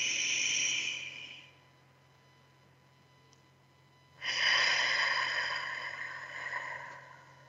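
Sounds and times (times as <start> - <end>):
person breathing deeply in through nose and out through mouth: 0.0 - 1.5, 4.2 - 7.4.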